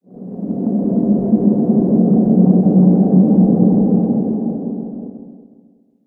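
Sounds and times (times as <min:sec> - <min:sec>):
dark ambient wind outdoors: 0:00.0 - 0:05.8.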